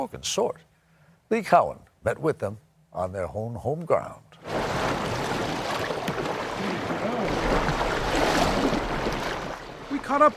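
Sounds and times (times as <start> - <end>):
speech: 0.0 - 0.7, 1.3 - 4.6, 10.0 - 10.3
rushing and gurgling river current on the South Fork of the Snake River in Idaho: 4.4 - 10.3.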